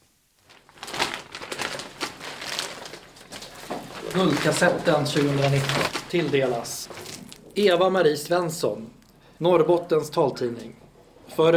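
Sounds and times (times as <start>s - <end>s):
paper wrapping crinkling as a diploma is unpacked at an award ceremony: 0.1s - 7.6s
speech: 4.1s - 6.9s, 7.6s - 10.8s, 11.4s - 11.5s.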